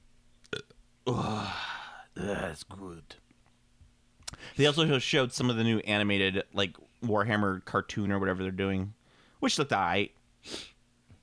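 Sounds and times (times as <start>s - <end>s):
loud burp: 0.5s - 2.4s
speech: 2.2s - 3.2s, 4.4s - 10.7s.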